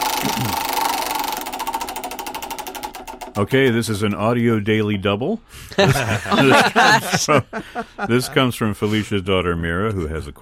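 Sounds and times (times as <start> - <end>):
prize wheel spinning during a quiz game: 0.0 - 3.8
speech: 3.4 - 10.3
laughter: 5.7 - 9.1.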